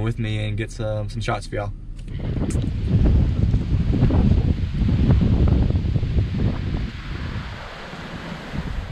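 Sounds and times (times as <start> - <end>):
speech: 0.0 - 2.9
wind buffeting the microphone under a beach pier: 2.0 - 8.9
faint wash of surf: 2.2 - 8.9.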